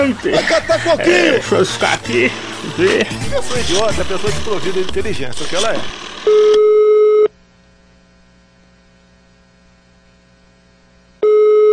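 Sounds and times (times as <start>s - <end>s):
laughter: 0.0s - 5.6s
speech: 0.0s - 6.8s
low hum: 0.0s - 11.2s
telephone ringback tone while placing a call: 6.2s - 7.3s, 11.2s - 11.7s.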